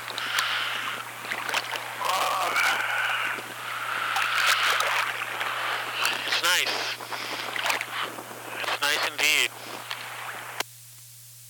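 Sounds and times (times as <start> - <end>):
fish splashing out of lake water: 0.0 - 8.0
lake water lapping and gurgling: 0.0 - 8.8, 9.5 - 10.6.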